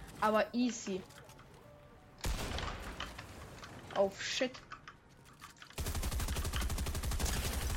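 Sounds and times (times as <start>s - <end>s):
speech: 0.2s - 1.2s, 4.0s - 4.7s
rapid automatic gunfire from a shooter video game: 5.8s - 7.7s.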